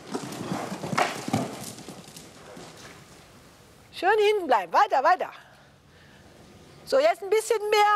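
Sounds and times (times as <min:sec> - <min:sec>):
horse hooves clopping on the ground at a walking pace: 0:00.0 - 0:03.5
faint hiss: 0:00.0 - 0:07.9
speech: 0:04.0 - 0:05.4, 0:06.9 - 0:07.9.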